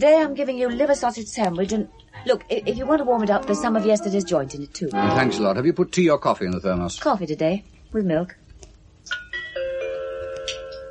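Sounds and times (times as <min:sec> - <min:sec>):
speech: 0:00.0 - 0:08.4
radio time signal gong: 0:04.9 - 0:05.8.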